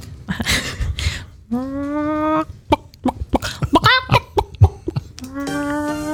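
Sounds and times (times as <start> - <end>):
person imitating a clucking chicken: 1.5 - 6.1.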